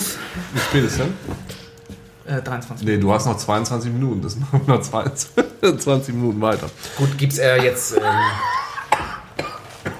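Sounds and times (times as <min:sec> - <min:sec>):
speech: 0:00.4 - 0:01.5, 0:02.3 - 0:08.6
laughter: 0:07.5 - 0:09.0
short sharp coughs: 0:07.6 - 0:09.9.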